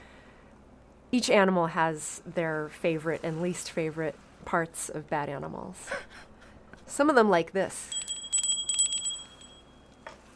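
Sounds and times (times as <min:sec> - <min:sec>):
speech: 0:01.1 - 0:06.3, 0:06.9 - 0:08.0
small high-pitched bell ringing: 0:07.8 - 0:10.0.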